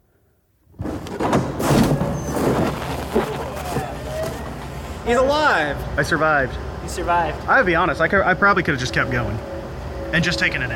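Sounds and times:
door opening with scraping rumbling noise: 0.8 - 4.7
speech: 5.1 - 9.5, 10.1 - 10.7.

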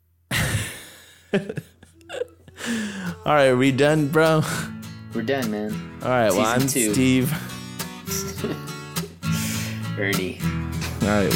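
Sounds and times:
laughter: 0.3 - 3.0, 8.1 - 8.7
speech: 1.3 - 1.8, 2.7 - 8.7, 10.0 - 11.3
person yawning loudly: 2.1 - 3.3.

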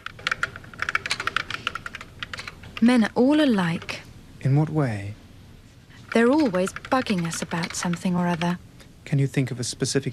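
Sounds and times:
rapid typing on a computer keyboard: 0.0 - 3.0, 6.1 - 8.6
speech: 2.8 - 5.2, 6.1 - 10.1.

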